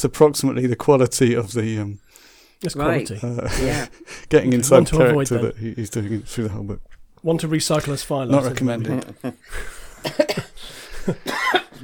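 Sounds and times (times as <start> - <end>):
speech: 0.0 - 2.0, 2.6 - 11.6
laughter: 8.4 - 11.8
person coughing: 10.0 - 11.8.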